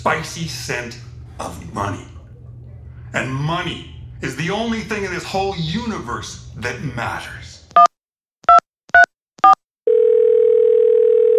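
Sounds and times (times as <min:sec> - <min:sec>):
speech: 0:00.0 - 0:02.2, 0:03.1 - 0:07.9
short telephone tones for a number not in service: 0:08.5 - 0:11.3
long steady telephone tone: 0:09.0 - 0:11.3.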